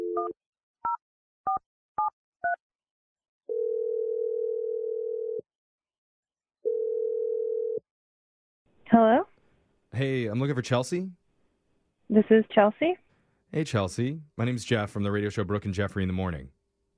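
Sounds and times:
speech: 0.2s - 0.6s, 8.9s - 9.3s, 10.0s - 11.2s, 12.1s - 16.6s
telephone ringing tones: 3.5s - 5.4s, 6.6s - 7.8s.

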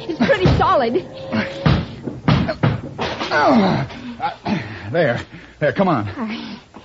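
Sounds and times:
speech: 0.8s - 1.6s, 3.4s - 6.5s
locked door being battered: 1.6s - 3.9s
person grunting with strain: 3.3s - 4.7s.

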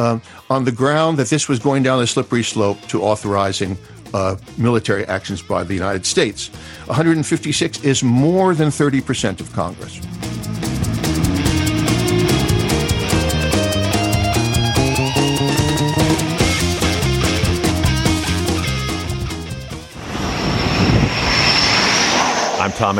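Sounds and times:
speech: 0.0s - 10.9s, 22.8s - 22.9s
steady musical passage: 0.0s - 20.0s
F/A-18 Hornet fighter jet landing on carrier: 10.0s - 13.9s, 18.1s - 22.9s.

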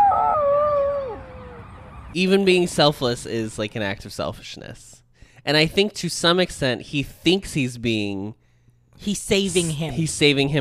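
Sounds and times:
dog howling: 0.0s - 1.7s
speech: 2.1s - 8.4s, 9.0s - 10.5s.

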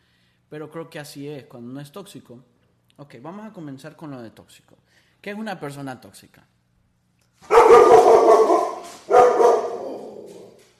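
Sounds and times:
speech: 0.5s - 6.5s
dog barking: 7.4s - 10.6s.

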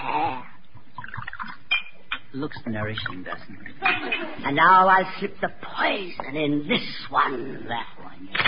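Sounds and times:
wine poured into three glasses with gurgling, trickles and splashes: 0.9s - 4.4s
speech: 2.3s - 8.4s.

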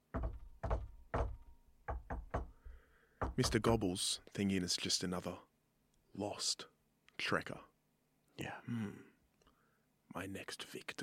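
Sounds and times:
firm knocking on a front door: 0.0s - 3.8s
speech: 3.4s - 5.5s, 6.2s - 7.7s, 8.4s - 9.1s, 10.1s - 11.0s.

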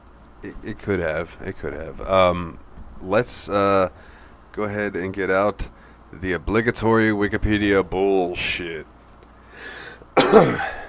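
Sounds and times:
speech: 0.4s - 8.9s, 9.6s - 10.8s
faint breathy hiss: 3.9s - 4.5s, 5.6s - 6.2s, 9.2s - 10.8s
raspy cough: 10.2s - 10.8s.

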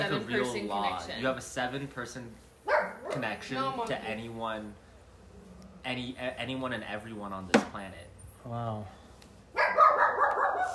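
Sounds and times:
speech: 0.0s - 4.8s, 5.8s - 9.9s
dog barking: 2.6s - 3.2s, 9.6s - 10.7s.

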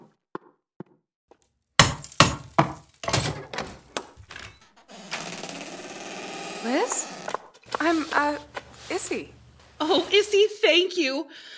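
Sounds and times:
hammer striking a stuck metal door bolt: 1.8s - 4.1s
speech: 6.6s - 7.0s, 7.9s - 11.5s.

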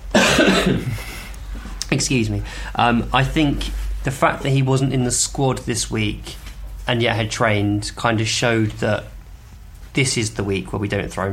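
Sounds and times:
person coughing: 0.1s - 1.3s
speech: 0.4s - 1.1s, 2.0s - 9.1s, 10.0s - 11.3s.

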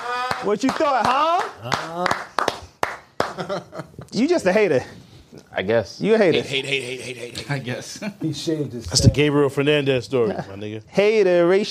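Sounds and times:
sharp hand claps: 0.0s - 3.5s
speech: 0.4s - 2.3s, 3.4s - 5.0s, 5.6s - 11.7s.

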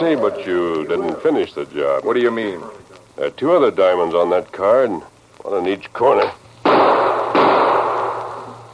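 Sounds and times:
speech: 0.0s - 6.4s
gunshots fired at a diamond-shaped target card: 6.6s - 8.6s.

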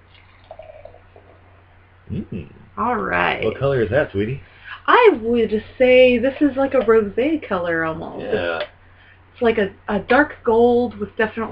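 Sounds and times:
steady low hum: 0.0s - 11.5s
raspberry wild ale pouring from a can into a glass: 0.1s - 1.6s
speech: 2.1s - 8.7s, 9.4s - 11.5s.

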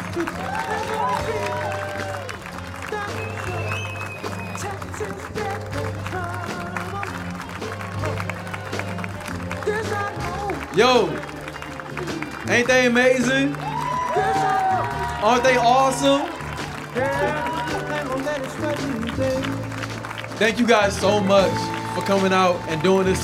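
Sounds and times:
large crowd clapping: 0.0s - 23.2s
crowd shouts and whoops: 0.1s - 2.4s, 13.5s - 18.3s, 21.2s - 23.2s
speech: 0.2s - 1.6s, 12.5s - 13.6s, 15.2s - 16.4s, 17.0s - 17.5s, 20.4s - 23.2s.

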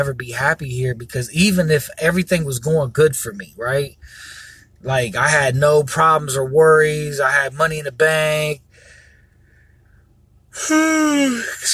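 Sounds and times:
speech: 0.0s - 8.6s, 10.6s - 11.7s
person yawning: 10.6s - 11.6s.

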